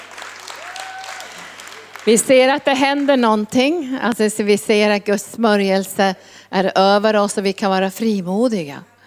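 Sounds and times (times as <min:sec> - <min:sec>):
crowd applauding: 0:00.0 - 0:03.2
speech: 0:02.0 - 0:08.9.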